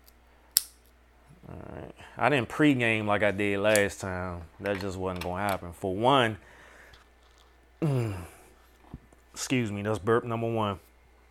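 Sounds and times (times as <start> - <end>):
cigar end being cut with a snip: 0.5 - 0.8
speech: 2.1 - 6.6, 7.8 - 8.4, 9.4 - 10.8.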